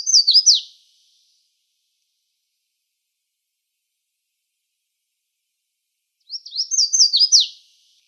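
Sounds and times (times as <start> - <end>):
red-faced warbler song in Arizona: 0.0 - 1.4, 6.2 - 8.0.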